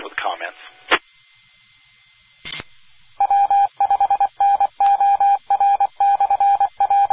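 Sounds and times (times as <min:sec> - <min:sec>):
radio static and hiss: 0:00.0 - 0:05.0
Morse code tone over a radio channel: 0:03.2 - 0:07.1.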